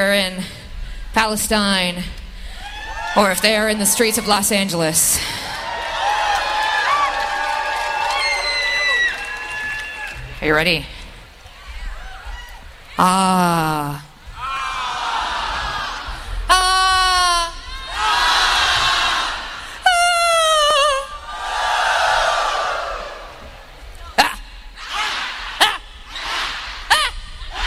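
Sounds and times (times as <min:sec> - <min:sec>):
speech: 0:00.0 - 0:00.6, 0:01.2 - 0:02.2, 0:03.1 - 0:05.4, 0:10.4 - 0:11.0, 0:13.0 - 0:14.0
crowd yelling in short sharp bursts: 0:02.6 - 0:10.3, 0:14.3 - 0:23.7, 0:24.8 - 0:27.6
large crowd screaming together: 0:02.6 - 0:10.3, 0:14.3 - 0:23.7.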